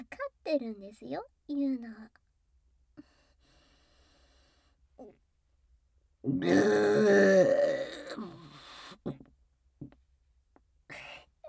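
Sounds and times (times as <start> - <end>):
speech: 0.0 - 2.2, 6.2 - 8.3
long loud croaking burp: 6.3 - 8.5
faint short throat noises: 6.3 - 10.0.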